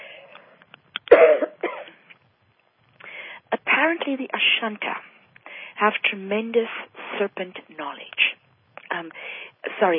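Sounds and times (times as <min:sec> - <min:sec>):
faint clicks of the throat: 0:00.3 - 0:01.2
person coughing up phlegm left over from congestion: 0:01.1 - 0:02.1
speech: 0:04.0 - 0:05.1, 0:05.8 - 0:08.2, 0:08.9 - 0:09.9.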